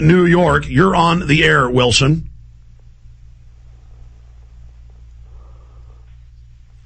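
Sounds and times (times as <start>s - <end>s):
speech: 0.0s - 2.3s
constant hum of phone line noise: 0.0s - 6.8s
caller breathing into a phone line: 5.2s - 6.3s.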